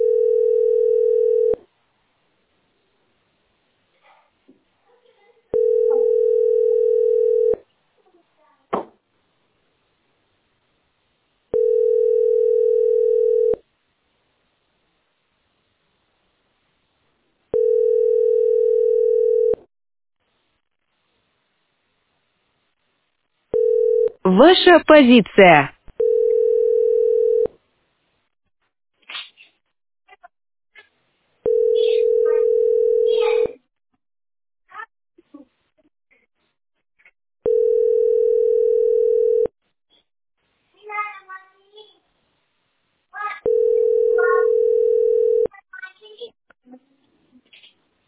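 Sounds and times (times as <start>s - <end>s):
telephone dial tone: 0.0s - 1.6s, 5.6s - 7.6s, 11.6s - 13.6s, 17.5s - 19.6s, 23.6s - 24.1s, 26.0s - 27.5s, 31.5s - 33.3s, 37.5s - 39.5s, 43.5s - 45.5s
speech: 24.3s - 25.7s.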